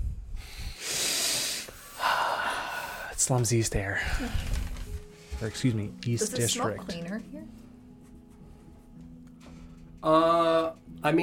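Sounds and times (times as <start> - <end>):
person taking a deep breath: 0.4 - 3.2
speech: 3.2 - 4.7, 5.4 - 7.6, 10.0 - 11.2.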